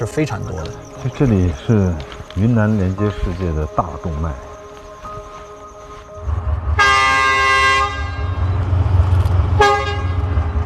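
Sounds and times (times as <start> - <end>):
speech: 0.0 - 4.5
steady low diesel engine rumble: 0.0 - 10.6
two locomotive horns signalling each other: 6.7 - 8.6, 9.5 - 10.5.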